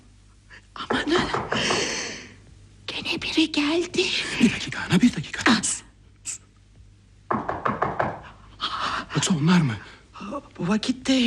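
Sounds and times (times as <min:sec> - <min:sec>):
firm knocks on a door: 0:00.8 - 0:01.9, 0:07.3 - 0:08.4
speech: 0:03.5 - 0:05.7, 0:09.2 - 0:11.2.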